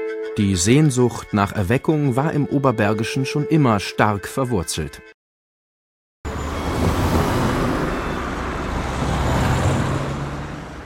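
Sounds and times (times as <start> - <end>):
speech: 0.4 - 5.1
heavy traffic on Bundesstraße 256 Kaiserstraße in Waldbröl: 6.3 - 10.8.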